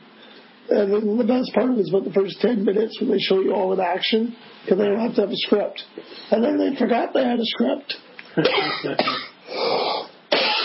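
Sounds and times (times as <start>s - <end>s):
speech: 0.7s - 9.8s
person coughing: 8.4s - 9.4s, 10.3s - 10.6s.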